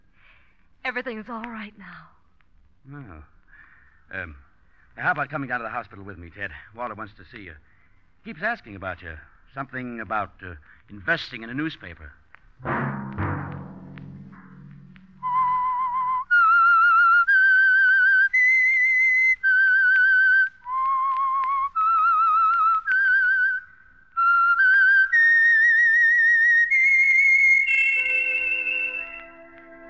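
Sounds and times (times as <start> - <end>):
speech: 0.9 - 2.2, 2.8 - 3.4, 4.1 - 13.2
whistled theme tune: 15.1 - 29.8.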